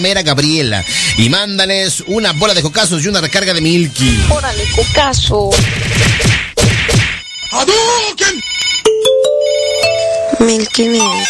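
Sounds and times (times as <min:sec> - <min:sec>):
speech: 0:00.0 - 0:06.3, 0:06.9 - 0:08.6, 0:09.8 - 0:11.2
electronic telephone ringtone with melodic repeated notes: 0:00.4 - 0:05.0, 0:07.2 - 0:11.2.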